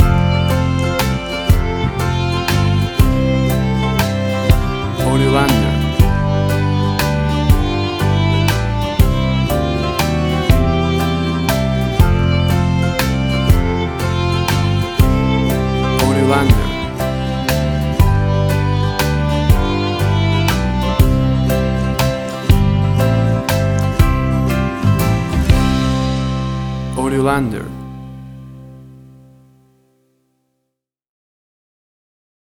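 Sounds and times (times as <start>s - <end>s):
romantic country waltz ballad: 0.0s - 29.5s.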